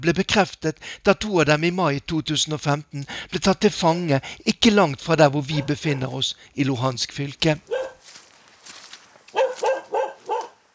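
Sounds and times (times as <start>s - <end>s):
speech: 0.0s - 7.9s
dogs barking at a military post near the border in Luhansk region Ukraine: 5.5s - 6.2s, 7.6s - 8.1s, 9.3s - 10.6s.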